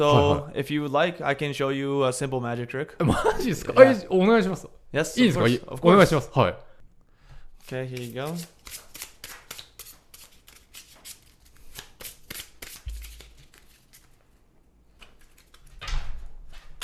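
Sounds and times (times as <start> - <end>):
laughter: 0.0 - 0.5, 3.0 - 4.0
speech: 0.0 - 6.7, 7.6 - 8.9
deck of playing cards riffle shuffled: 7.6 - 14.3, 15.0 - 15.7.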